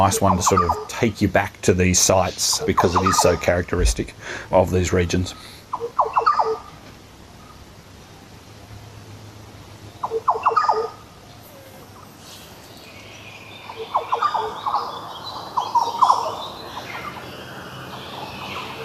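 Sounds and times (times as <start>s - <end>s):
yellow oriole calling with liquid whistled notes: 0.0s - 1.2s, 2.0s - 4.0s, 5.7s - 6.8s, 9.9s - 18.8s
speech: 0.0s - 6.0s
steady hiss of insects: 0.0s - 18.8s.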